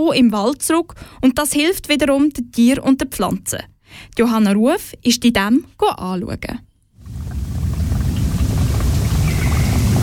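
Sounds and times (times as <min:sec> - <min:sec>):
speech: 0:00.0 - 0:06.7
small forest stream babbling: 0:07.0 - 0:10.0.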